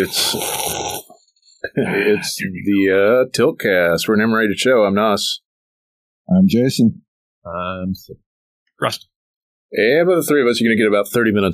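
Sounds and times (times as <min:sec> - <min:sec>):
speech: 0:00.0 - 0:00.8, 0:01.7 - 0:05.4, 0:06.3 - 0:08.2, 0:08.8 - 0:09.1, 0:09.7 - 0:11.5
loud slurping sip of a drink: 0:00.0 - 0:01.2.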